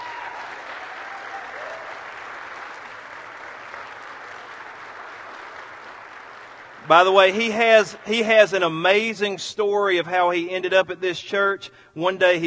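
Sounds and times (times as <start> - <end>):
large audience applauding: 0.0 - 8.6
speech: 6.9 - 12.4.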